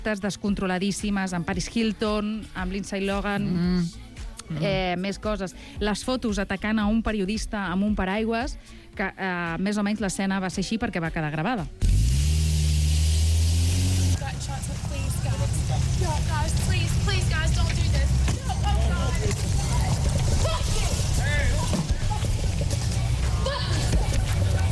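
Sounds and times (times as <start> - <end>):
speech: 0.0 - 12.0
car engine idling: 11.8 - 23.3
paparazzi shouting around a car: 18.4 - 24.7.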